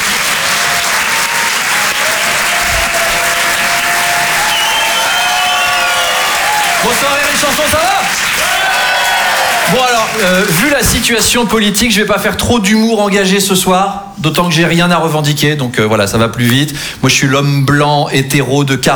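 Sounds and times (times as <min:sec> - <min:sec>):
audience applause for a comedian at a comedy club: 0:00.0 - 0:11.4
speech: 0:06.9 - 0:08.2, 0:09.7 - 0:18.9.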